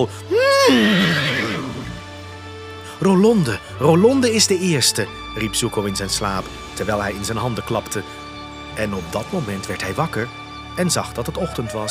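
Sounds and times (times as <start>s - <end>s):
speech: 0.0s - 1.3s, 3.0s - 8.2s, 8.8s - 11.8s
horse whinnying: 0.3s - 2.1s.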